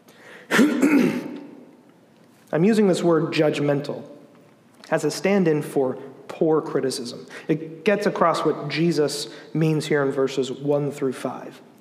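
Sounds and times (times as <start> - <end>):
person clearing their throat with a short rough cough: 0.5 - 1.5
speech: 2.5 - 4.2, 4.9 - 11.7.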